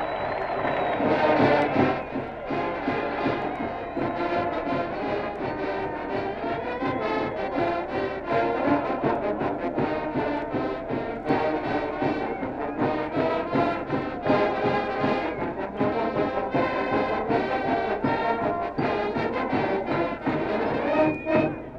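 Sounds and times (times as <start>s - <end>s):
large stadium crowd at a college football game cheering after a touchdown: 0.0s - 21.7s.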